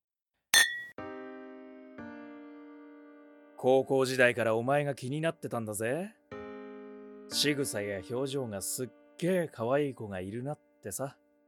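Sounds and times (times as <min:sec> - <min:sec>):
glasses of juice and whiskey on the rocks clinking in a toast: 0:00.6 - 0:01.0
speech: 0:03.6 - 0:06.2, 0:07.3 - 0:11.2.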